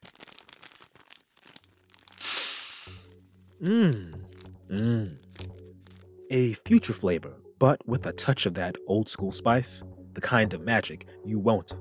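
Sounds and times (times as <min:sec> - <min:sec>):
takeout delivery bag crinkling and tearing as it is opened: 0:00.0 - 0:06.2
speech: 0:03.6 - 0:05.2, 0:06.3 - 0:11.8.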